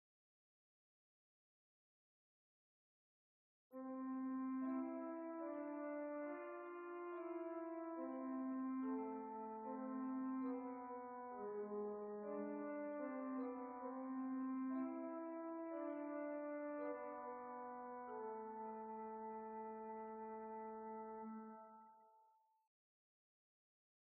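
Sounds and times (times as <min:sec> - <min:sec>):
pipe organ with 8-foot gamba stop: 0:03.8 - 0:22.0.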